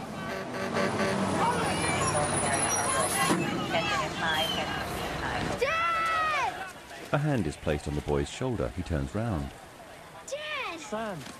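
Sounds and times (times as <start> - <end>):
heavy fire truck rumbling onto a bridge: 0.0 - 5.6
crowd chatter: 0.0 - 11.3
traffic noise: 0.0 - 11.3
speech: 7.1 - 9.6, 10.9 - 11.3.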